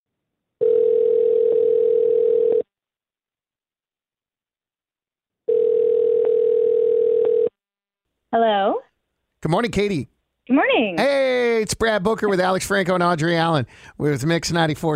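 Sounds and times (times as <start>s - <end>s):
phone ringback tones from a call being placed: 0.6s - 2.6s, 5.5s - 7.5s
speech: 8.3s - 8.8s, 9.5s - 14.9s.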